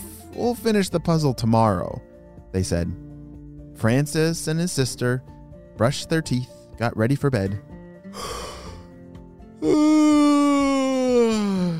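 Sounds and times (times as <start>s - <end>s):
speech: 0.4s - 3.1s, 3.8s - 8.5s, 9.6s - 10.2s
person performing an exaggerated yawn: 8.1s - 8.9s, 9.6s - 11.7s.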